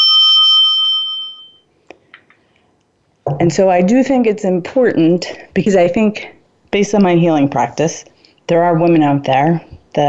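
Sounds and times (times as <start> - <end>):
bright bell ding: 0.0 - 1.7
speech: 3.4 - 10.0.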